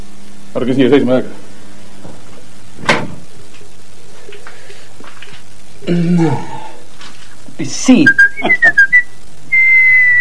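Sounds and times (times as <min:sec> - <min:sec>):
speech: 0:00.5 - 0:01.4, 0:05.9 - 0:06.6, 0:07.6 - 0:08.8
heavy iron door opening with a sharp clunk: 0:02.8 - 0:03.2.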